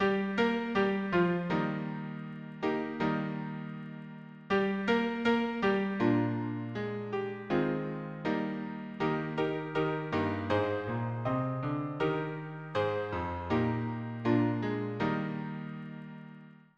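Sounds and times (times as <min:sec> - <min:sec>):
hymn harmony on piano: 0:00.0 - 0:16.5.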